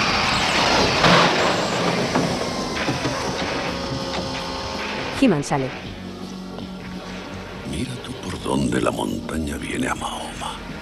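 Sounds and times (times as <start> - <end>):
car skidding to a stop with a hiss of friction: 0.0 - 5.2
speech: 5.2 - 5.9, 8.5 - 10.5.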